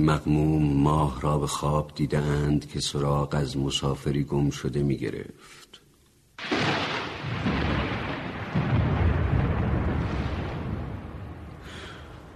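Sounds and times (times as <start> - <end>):
speech: 0.0 - 5.8
deep rolling thunder: 6.4 - 12.3
heavy rain: 6.4 - 12.3.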